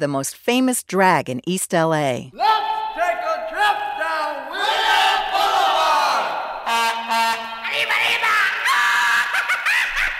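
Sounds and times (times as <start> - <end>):
speech: 0.0 - 2.8
band member yelling a celebratory Mexican grito cheer: 2.4 - 7.1, 7.7 - 9.4
laughter: 6.7 - 10.1.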